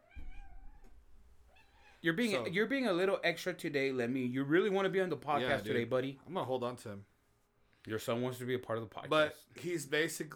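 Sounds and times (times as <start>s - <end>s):
cat meowing: 0.0s - 2.0s
speech: 2.0s - 7.1s, 7.8s - 10.3s.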